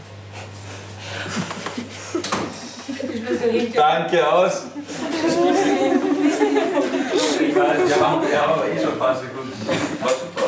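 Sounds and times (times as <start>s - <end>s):
steady low hum: 0.0s - 10.4s
laughter: 1.1s - 10.4s
door pushed shut and latching: 2.2s - 2.6s
speech: 3.3s - 10.3s.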